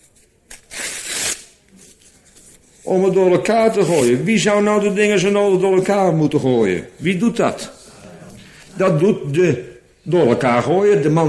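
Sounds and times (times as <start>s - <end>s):
sheet of paper torn in one quick rip: 0.1s - 2.6s
speech: 2.8s - 7.8s, 8.8s - 11.2s.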